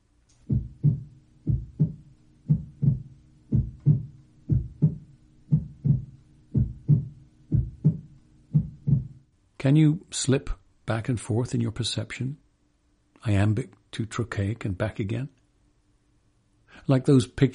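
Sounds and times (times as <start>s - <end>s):
faint low hum: 0.0s - 17.5s
human heartbeat: 0.4s - 9.2s
speech: 9.6s - 12.4s, 13.2s - 15.4s, 16.7s - 17.5s.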